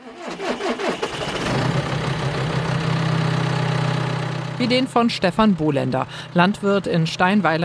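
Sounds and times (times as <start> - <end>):
tractor diesel engine cranking and running in a field: 0.0 - 7.6
speech: 4.6 - 7.6.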